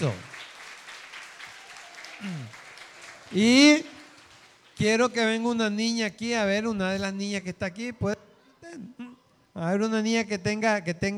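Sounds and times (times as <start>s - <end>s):
speech: 0.0s - 0.3s, 3.3s - 3.9s, 4.8s - 11.1s
audience applause: 0.0s - 4.8s.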